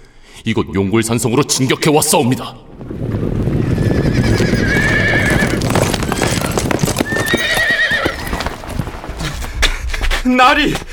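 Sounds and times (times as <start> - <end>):
speech: 0.4 - 3.2, 10.4 - 10.9
mass of cavalry horses galloping: 2.8 - 10.9
horses neighing: 3.6 - 9.4.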